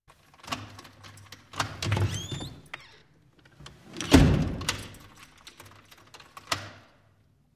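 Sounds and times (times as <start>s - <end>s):
door creaking: 1.5s - 6.7s
door closing: 1.6s - 5.2s.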